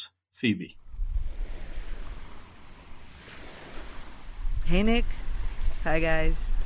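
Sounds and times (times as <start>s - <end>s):
speech: 0.4s - 0.8s, 4.7s - 6.6s
wind noise: 0.8s - 2.5s, 3.3s - 6.6s
waves washing onto a beach in a small seaside suburb: 1.3s - 6.6s.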